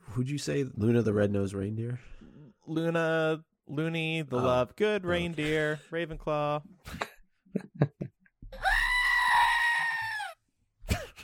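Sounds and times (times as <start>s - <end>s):
speech: 0.2s - 7.9s
goat screaming sound effect: 8.6s - 10.4s.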